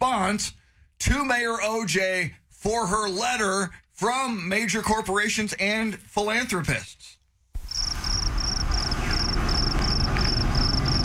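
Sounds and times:
speech: 0.3 - 7.2
crickets chirping: 7.6 - 11.0.

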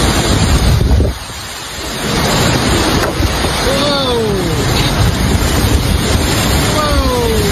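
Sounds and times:
tornado winds roaring: 0.0 - 7.5.

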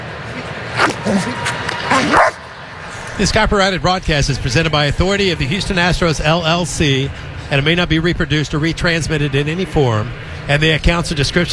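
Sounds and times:
crowd at a baseball game: 0.0 - 11.5
speech: 1.0 - 2.4, 3.2 - 11.5
police K-9 dog barking: 1.9 - 2.4.

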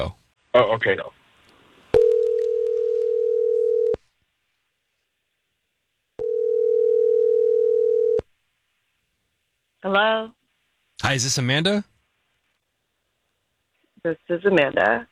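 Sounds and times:
speech: 0.0 - 1.2, 9.8 - 10.4, 11.0 - 11.9, 14.0 - 15.1
ringback tones from an outgoing phone call: 2.0 - 4.0, 6.2 - 8.2.

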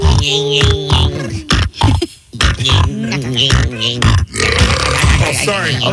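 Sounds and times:
speech: 0.2 - 0.8, 5.5 - 5.9
loud drawn-out burp: 2.6 - 5.4.

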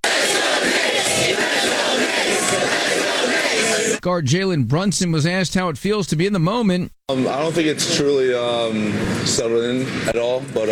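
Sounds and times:
large crowd cheering for basketball team: 0.0 - 4.0
speech: 4.0 - 10.7.

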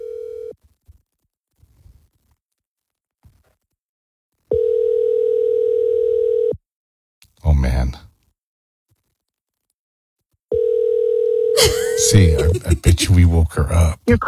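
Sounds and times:
outgoing telephone call ringing through a handset: 0.0 - 0.5, 4.5 - 6.6, 10.5 - 12.2
laughter: 11.6 - 13.5
speech: 12.1 - 14.2.

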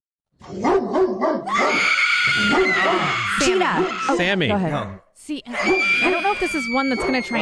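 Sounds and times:
pit bull barking and yowling: 0.4 - 4.4, 5.5 - 7.4
speech: 0.4 - 7.4.

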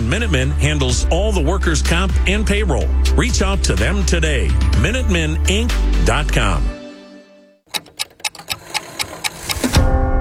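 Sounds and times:
speech: 0.1 - 6.8
clock ticking: 7.7 - 9.8.

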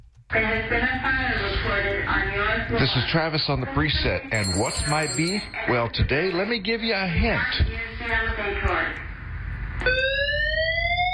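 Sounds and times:
speech: 0.3 - 9.0
fire alarm being tested with a harsh buzzy electronic tone: 4.4 - 5.7, 9.8 - 11.1.

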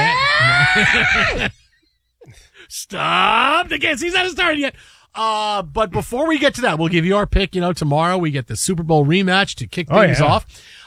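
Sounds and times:
woman screaming shrilly while tormenting a man: 0.0 - 1.6
laughter: 0.0 - 3.9, 9.8 - 10.5
speech: 0.8 - 1.6, 2.3 - 10.8.

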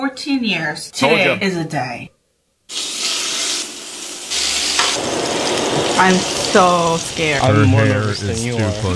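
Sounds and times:
speech: 0.1 - 2.9, 6.0 - 8.9
New York strip steak sizzling in a hot pan: 2.7 - 8.9.

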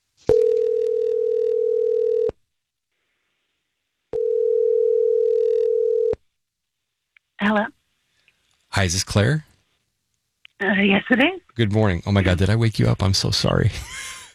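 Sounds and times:
outgoing telephone call ringback tone: 0.3 - 2.3, 4.2 - 6.2
speech: 8.8 - 9.5, 10.6 - 13.9.

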